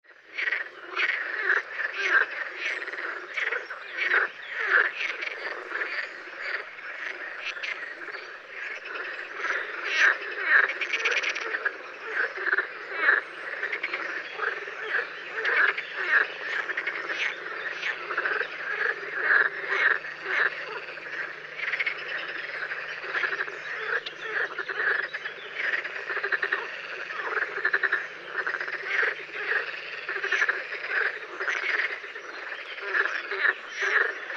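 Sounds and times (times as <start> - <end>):
green frog croaking: 0.2 - 34.3.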